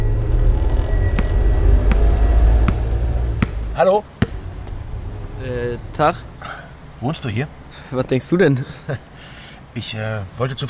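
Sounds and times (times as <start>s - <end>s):
car engine rumbling as the vehicle pulls away: 0.0s - 7.7s
speech: 3.8s - 4.1s, 5.4s - 6.3s, 7.0s - 9.1s, 9.8s - 10.6s.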